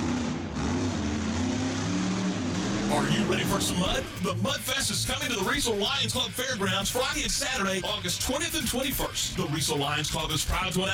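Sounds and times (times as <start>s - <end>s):
monster truck engine revving: 0.0s - 5.9s
speech: 3.0s - 10.9s.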